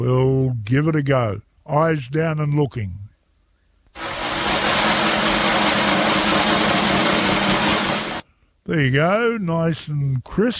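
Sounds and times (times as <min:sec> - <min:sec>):
speech: 0:00.0 - 0:03.0, 0:08.7 - 0:10.5
loud drum roll: 0:04.0 - 0:08.2.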